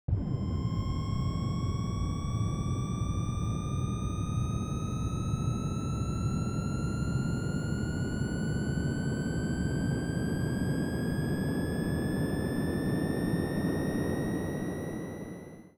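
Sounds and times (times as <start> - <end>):
jet plane: 0.1 - 15.6.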